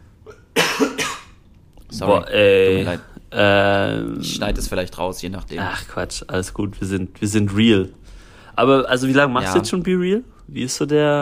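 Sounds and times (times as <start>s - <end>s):
person coughing: 0.2s - 1.4s
speech: 2.0s - 8.0s, 8.6s - 11.2s.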